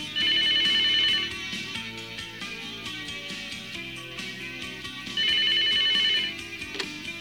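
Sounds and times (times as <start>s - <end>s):
telephone ringing with bright trilling rings: 0.0s - 2.2s, 4.8s - 7.0s
steady music: 0.0s - 7.2s.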